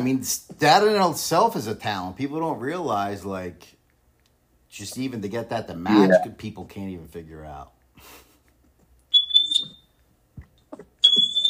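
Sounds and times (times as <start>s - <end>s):
speech: 0.0s - 3.8s, 4.7s - 8.2s
smoke alarm beeps in a house: 9.1s - 9.9s, 11.0s - 11.4s.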